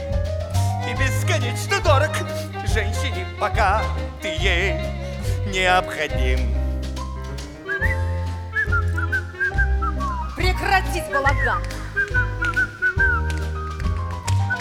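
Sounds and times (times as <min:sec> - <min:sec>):
steady rhythmic music: 0:00.0 - 0:14.6
speech: 0:01.0 - 0:06.6, 0:10.6 - 0:12.2
person whistling a wavering, sliding melody: 0:07.6 - 0:10.4, 0:11.0 - 0:14.6.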